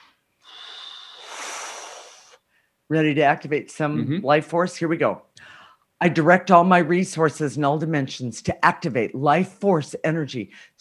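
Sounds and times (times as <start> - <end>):
person taking a long airy inhale: 0.0 - 2.8, 5.4 - 5.9
speech: 2.9 - 5.3, 6.0 - 10.8.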